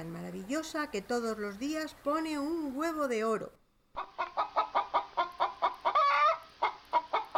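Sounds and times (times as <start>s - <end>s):
speech: 0.0s - 3.6s
hen clucking: 4.0s - 7.3s.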